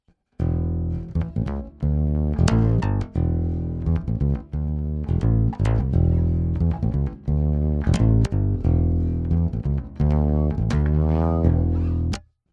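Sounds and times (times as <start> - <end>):
fretless bass through high-impedance input with high-pass filter: 0.4 - 12.3.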